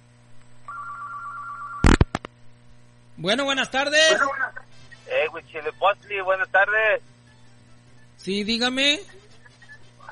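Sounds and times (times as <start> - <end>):
telephone ringing with an incoming call: 0.7 - 2.0
speech: 3.2 - 4.4, 5.2 - 7.1, 8.2 - 9.2.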